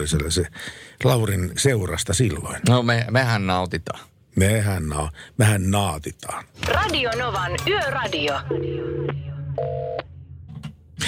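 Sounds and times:
speech: 0:00.0 - 0:10.1
telephone line noise as a call connects: 0:08.3 - 0:10.0.

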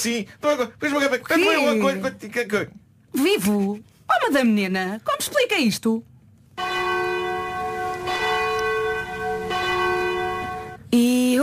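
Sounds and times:
speech: 0:00.0 - 0:06.9
church bell tolling: 0:06.6 - 0:10.9.

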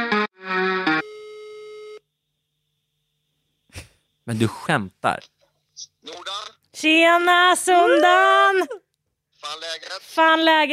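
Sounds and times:
telephone ringback tone through a phone line: 0:01.0 - 0:02.0
speech: 0:04.3 - 0:08.8, 0:09.4 - 0:10.7.

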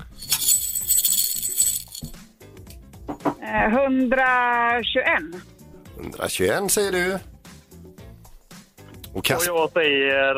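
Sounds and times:
dry macaroni rattling in a jar: 0:00.0 - 0:02.2
speech: 0:03.4 - 0:07.3, 0:09.2 - 0:10.3.

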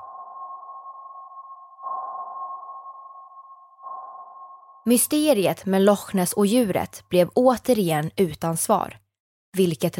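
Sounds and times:
sonar pings from echo sounders on a search boat scanning Loch Ness: 0:00.0 - 0:05.0
speech: 0:04.8 - 0:09.9.

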